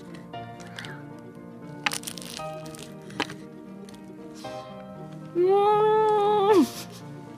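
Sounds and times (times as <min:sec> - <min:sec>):
biting into crispy flaky pie pastry filled with custard cream: 0:00.0 - 0:04.2
person humming with wavering pitch: 0:05.3 - 0:06.9.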